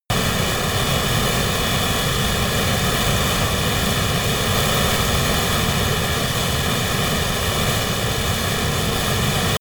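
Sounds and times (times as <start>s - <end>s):
military A-10 Thunderbolt jet turbine at full power close: 0.1s - 9.6s.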